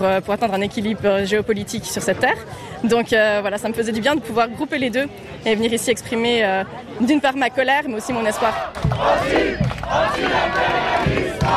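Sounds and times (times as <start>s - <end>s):
speech: 0.0s - 11.5s
dense crowd of protesters shouting and chanting: 3.7s - 11.5s.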